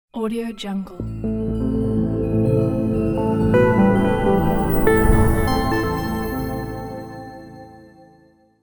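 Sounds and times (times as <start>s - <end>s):
short news arpeggio stinger: 1.0s - 7.9s.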